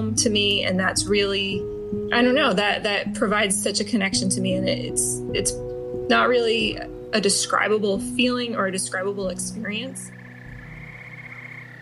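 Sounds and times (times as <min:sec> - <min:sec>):
speech: 0:00.1 - 0:10.2
frogs calling at a vernal pool: 0:09.4 - 0:11.8.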